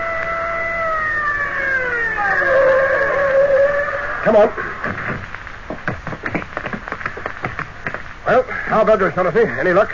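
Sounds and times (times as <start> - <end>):
patrol siren wailing with falling harmonic tones: 0.0 - 4.4
speech: 4.2 - 5.3, 8.3 - 9.9.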